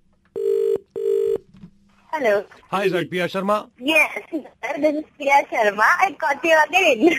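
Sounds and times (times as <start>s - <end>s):
ringback tones from an outgoing phone call: 0.4s - 1.4s
speech: 2.1s - 7.1s.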